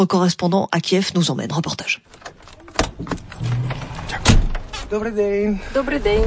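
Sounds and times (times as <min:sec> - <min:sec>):
speech: 0:00.0 - 0:02.4, 0:03.0 - 0:03.6, 0:04.9 - 0:06.2
heavy cab door of a large truck clunking open: 0:02.1 - 0:04.9
heavy cab door of a large truck slamming shut: 0:02.7 - 0:04.8.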